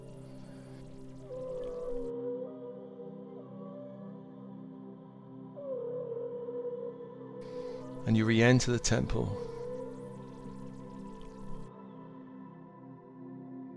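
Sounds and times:
steady sustained drone: 0.0 - 2.1, 7.4 - 11.7
whale song: 0.0 - 3.0, 5.6 - 11.7
speech: 8.0 - 9.5.

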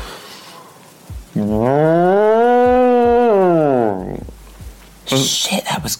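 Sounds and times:
person imitating a cow mooing: 1.3 - 4.4
speech: 1.4 - 2.1, 5.1 - 5.9.

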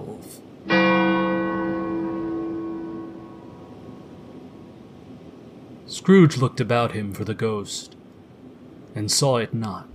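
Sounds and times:
single deep resonant bell striking twelve: 0.7 - 4.5
speech: 6.1 - 8.0, 9.0 - 9.9.

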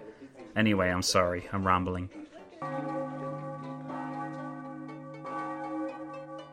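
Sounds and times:
speech: 0.6 - 2.9
church bells ringing: 2.6 - 6.5.

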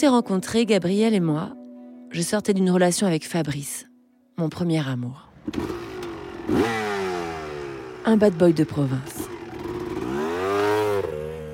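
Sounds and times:
speech: 0.0 - 6.8, 8.0 - 9.3
motorcycle engine revving while riding through streets: 5.3 - 11.5.

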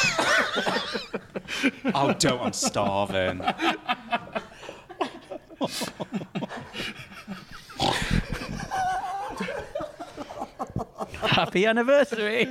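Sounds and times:
bursty laughter, giggling and chuckling: 0.0 - 12.4
speech: 1.6 - 4.0, 11.4 - 12.4
person snorting nasally imitating a pig's grunt: 7.7 - 8.6.

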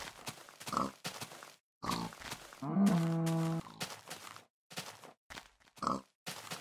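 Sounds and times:
pigs grunting and oinking: 0.7 - 1.0, 1.8 - 3.8, 5.8 - 6.1.

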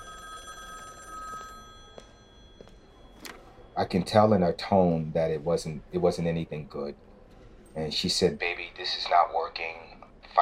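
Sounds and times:
telephone ringing with a bright trilling tone: 0.0 - 4.4
speech: 3.8 - 7.1, 7.8 - 10.4.

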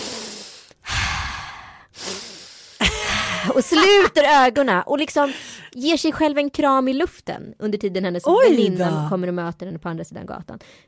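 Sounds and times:
person acting out an exaggerated deep inhale: 0.0 - 3.4
speech: 3.4 - 10.8.

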